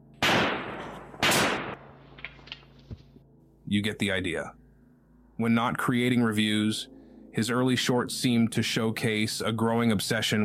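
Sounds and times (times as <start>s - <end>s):
loud gunshots: 0.2s - 2.0s
speech: 3.7s - 4.6s, 5.4s - 10.4s.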